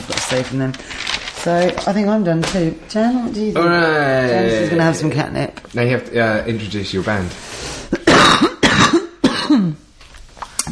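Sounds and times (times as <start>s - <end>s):
speech: 0.3s - 7.6s
harsh forceful throaty coughs: 7.9s - 9.8s.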